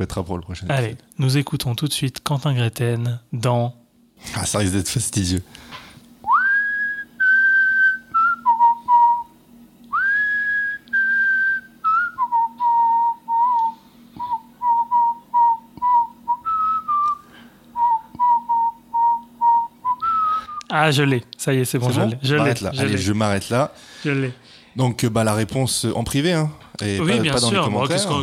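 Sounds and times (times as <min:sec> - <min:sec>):
speech: 0:00.0 - 0:05.8, 0:20.8 - 0:28.2
faint steady hum: 0:00.0 - 0:28.2
person whistling a song melody: 0:06.3 - 0:09.3, 0:09.9 - 0:20.7.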